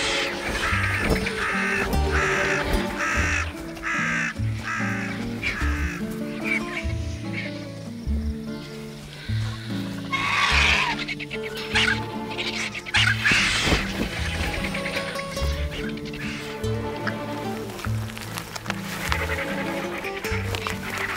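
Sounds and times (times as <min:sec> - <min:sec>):
crow cawing loudly and harshly: 0:00.0 - 0:06.6, 0:09.2 - 0:13.7
continuous noise: 0:00.0 - 0:21.1.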